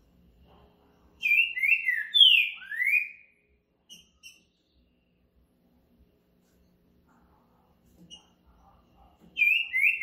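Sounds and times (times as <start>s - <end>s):
caged green-winged saltator singing: 1.2s - 4.8s, 9.4s - 10.0s.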